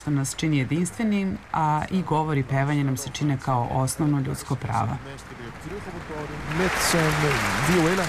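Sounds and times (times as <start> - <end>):
speech: 0.0 - 8.0
audience applause after the final number of a concert: 5.6 - 8.0.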